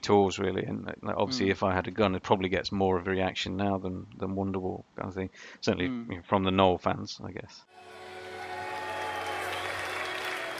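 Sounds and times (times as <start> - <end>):
speech: 0.0 - 8.0
faint tonal hum: 0.6 - 2.1
audience of many people clapping steadily: 7.8 - 10.5.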